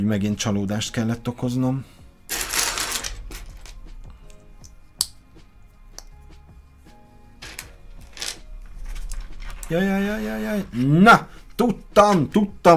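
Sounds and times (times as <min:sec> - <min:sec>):
speech: 0:00.0 - 0:02.0, 0:09.7 - 0:12.7
plastic bag of small plastic parts rustling and rattling: 0:07.4 - 0:09.7.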